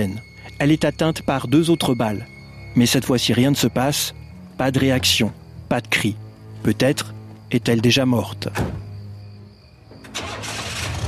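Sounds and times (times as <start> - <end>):
speech: 0.0 - 8.8
white car engine starting and speeding off from a golf course parking lot: 9.9 - 11.0.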